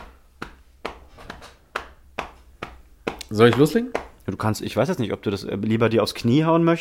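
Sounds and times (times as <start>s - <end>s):
hand claps along on every beat: 0.0s - 4.2s
speech: 3.3s - 6.7s.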